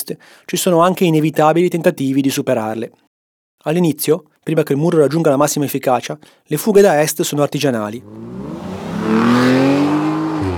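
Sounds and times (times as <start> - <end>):
speech: 0.1 - 9.6
sports car engine revving while speeding and shifting gear: 8.0 - 10.5.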